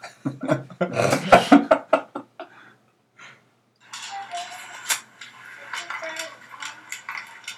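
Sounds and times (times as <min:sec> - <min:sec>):
laughter: 0:00.0 - 0:02.5
dog claws clicking on a hard kitchen floor: 0:04.8 - 0:07.5.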